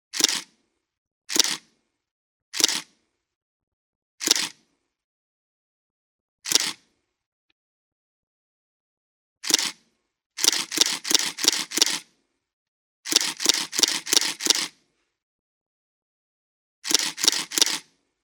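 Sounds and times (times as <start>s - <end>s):
Pentax 645Z camera: 0.1s - 0.6s, 1.3s - 1.8s, 2.6s - 3.0s, 4.2s - 4.7s, 6.4s - 7.0s, 9.4s - 12.2s, 13.1s - 14.9s, 16.8s - 18.0s.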